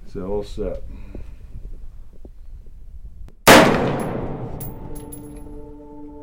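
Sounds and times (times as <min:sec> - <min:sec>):
AR-15 rifle shot at an outdoor desert shooting range near Albuquerque: 0:03.5 - 0:05.3.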